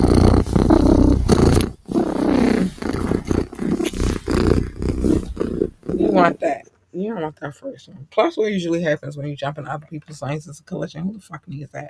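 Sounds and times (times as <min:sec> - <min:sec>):
cat purring: 0:00.0 - 0:06.6
speech: 0:06.3 - 0:11.8.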